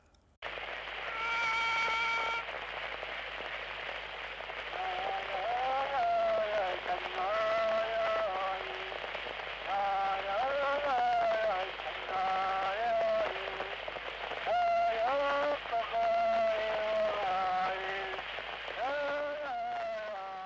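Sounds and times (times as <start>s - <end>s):
dense hissy crackling backdrop: 0.0s - 20.4s
lone voice chanting a Greenlandic drum song of derision: 4.7s - 9.0s, 9.7s - 13.8s, 14.5s - 18.2s, 18.8s - 20.4s.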